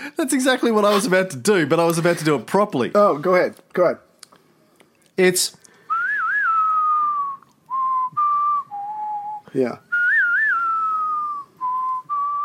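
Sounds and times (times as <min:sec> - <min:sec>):
speech: 0:00.1 - 0:04.0, 0:05.2 - 0:05.6, 0:09.5 - 0:09.8
person whistling a melody: 0:05.9 - 0:12.4.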